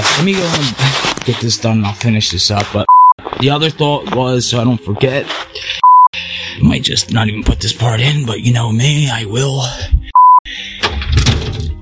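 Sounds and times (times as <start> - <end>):
speech: 0.2 - 5.8, 6.6 - 10.0
beep tone: 2.9 - 3.2, 5.8 - 6.1, 10.1 - 10.5.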